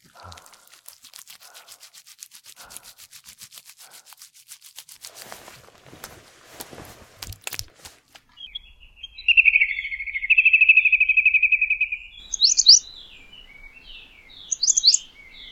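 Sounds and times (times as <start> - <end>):
birds chirping outdoors heard through an open window: 8.3 - 15.5.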